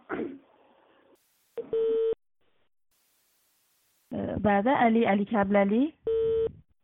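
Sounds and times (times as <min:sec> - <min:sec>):
loud steady electronic phone tone: 0:01.6 - 0:02.2, 0:06.1 - 0:06.6
speech: 0:04.4 - 0:06.0.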